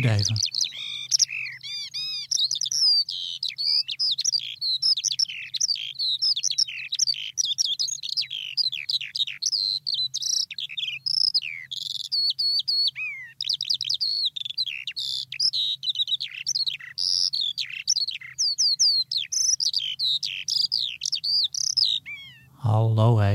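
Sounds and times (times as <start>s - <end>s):
speech: 0.0s - 0.5s, 22.7s - 23.3s
Eurasian skylark singing: 0.0s - 23.3s.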